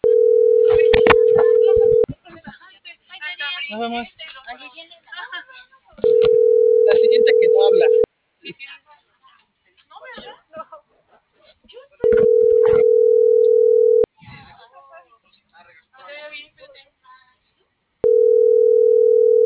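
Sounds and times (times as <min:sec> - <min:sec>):
ringback tones of an unanswered outgoing phone call: 0:00.0 - 0:02.1, 0:06.0 - 0:08.1, 0:12.0 - 0:14.1, 0:18.0 - 0:19.4
speech: 0:03.8 - 0:04.2.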